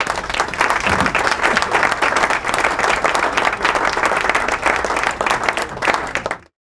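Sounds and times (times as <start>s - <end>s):
applause in a board room: 0.0s - 6.6s.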